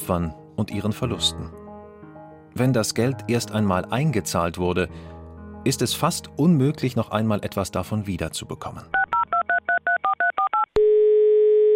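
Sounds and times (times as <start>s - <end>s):
speech: 0.0s - 1.6s, 2.6s - 9.0s
telephone touch-tone beeps dialing a call to Vienna: 9.0s - 11.7s.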